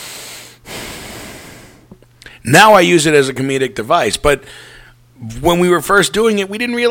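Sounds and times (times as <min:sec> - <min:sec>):
heavy breathing into a microphone: 0:00.0 - 0:02.4, 0:04.4 - 0:05.0
speech: 0:02.4 - 0:06.8.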